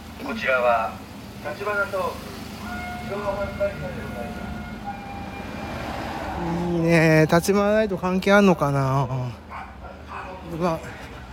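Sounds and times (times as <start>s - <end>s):
speech: 0.2s - 2.4s, 3.1s - 4.5s, 6.4s - 9.4s, 10.5s - 11.0s
dog barking: 9.5s - 10.5s.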